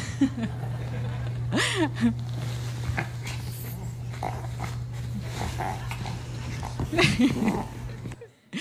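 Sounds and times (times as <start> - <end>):
laughter: 0.0 - 2.4, 6.8 - 8.5
steady low electrical hum: 0.0 - 8.5
small female dog snorting and growling while playing with a plush toy: 2.4 - 8.2.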